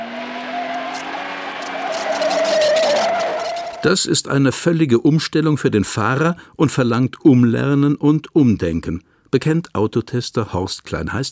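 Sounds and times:
steady droning tire whine: 0.0s - 3.9s
car ABS brakes pulsing during hard braking: 0.0s - 4.0s
speech: 3.8s - 11.3s.

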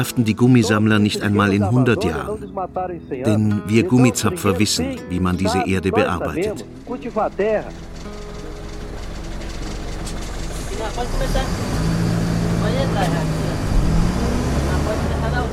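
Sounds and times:
road noise: 0.0s - 2.6s, 3.3s - 15.5s
speech: 0.0s - 7.9s, 10.8s - 11.9s, 12.6s - 13.4s
bus engine rumble: 4.8s - 15.5s.

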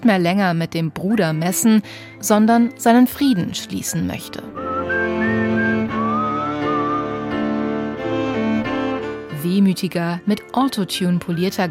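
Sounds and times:
speech: 0.1s - 4.6s, 9.4s - 11.6s
whistled melody with a slow wistful tune: 1.4s - 9.3s, 10.0s - 11.6s
full musical backing of sustained chords and bass: 4.4s - 9.4s.

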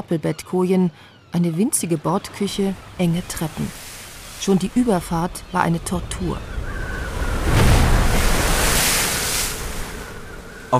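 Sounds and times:
speech: 0.1s - 3.8s, 4.4s - 6.5s
water lapping against a shore or hull in a sheltered harbour bay at Galveston: 1.6s - 10.7s
breezy wind-blown hiss over a sheltered harbour bay: 2.8s - 10.7s.

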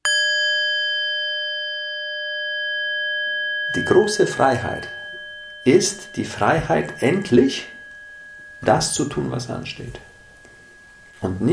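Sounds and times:
meditation bell struck and ringing: 0.0s - 11.5s
speech: 3.7s - 5.0s, 5.6s - 7.8s, 8.6s - 10.1s, 11.2s - 11.5s.

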